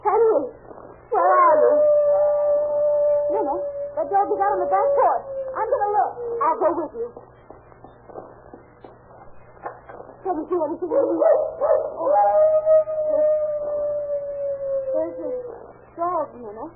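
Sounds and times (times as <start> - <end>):
faint low hum: 0.0 - 16.7
dog howling: 1.1 - 6.9, 10.9 - 15.7
speech: 6.1 - 7.4, 10.2 - 13.0, 15.0 - 16.7
dog barking: 10.9 - 12.0.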